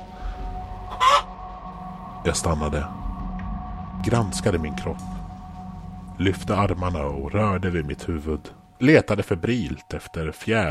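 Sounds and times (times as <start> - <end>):
hen clucking: 0.8 - 1.4
speech: 2.2 - 3.0, 4.0 - 5.2, 6.2 - 10.6.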